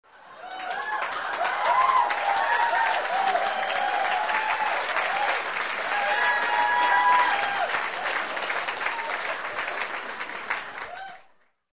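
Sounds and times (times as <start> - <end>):
loud applause in a small room: 0.0 - 11.7.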